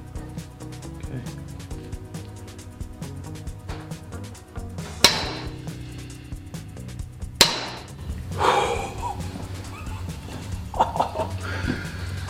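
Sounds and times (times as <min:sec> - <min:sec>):
low steady background: 0:00.0 - 0:12.2
2021 Excalibur TwinStrike crossbow firing shots: 0:04.9 - 0:05.9, 0:07.4 - 0:08.0
laughter: 0:08.3 - 0:12.2.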